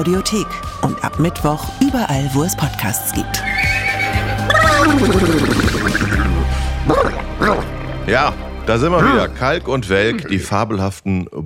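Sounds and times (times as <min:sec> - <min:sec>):
speech: 0:00.0 - 0:03.6, 0:04.8 - 0:11.4
man imitating a horse whinnying: 0:03.5 - 0:07.6.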